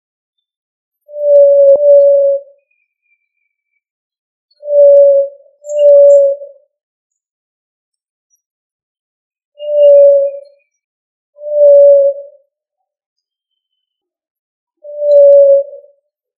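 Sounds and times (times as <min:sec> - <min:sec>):
pigeon cooing: 0:01.2 - 0:02.5, 0:04.7 - 0:06.5, 0:09.6 - 0:10.4, 0:11.5 - 0:12.2, 0:15.0 - 0:15.9.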